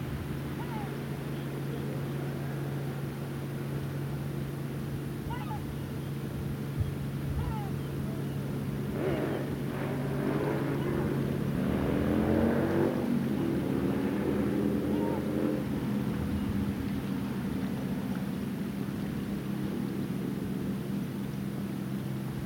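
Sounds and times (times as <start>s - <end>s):
gulls calling above a headland on the south Gower coast: 0.1s - 22.4s.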